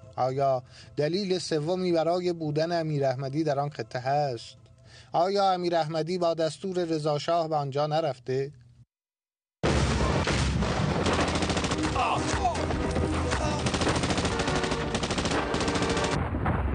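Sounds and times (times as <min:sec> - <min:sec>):
speech: 0:00.2 - 0:08.6
machine gun fire echoing through the foothills: 0:09.6 - 0:12.2, 0:13.0 - 0:16.3.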